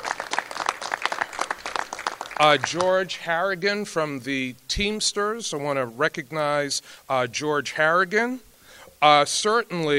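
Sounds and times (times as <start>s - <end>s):
audience applause at a film-community gathering: 0.0s - 3.0s
speech: 2.4s - 9.9s.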